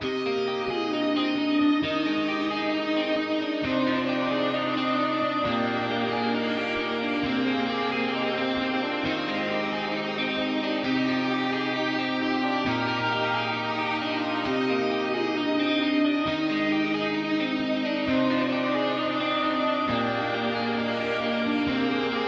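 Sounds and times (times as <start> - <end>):
emotional electric guitar pop ensemble in C minor: 0.0 - 22.2.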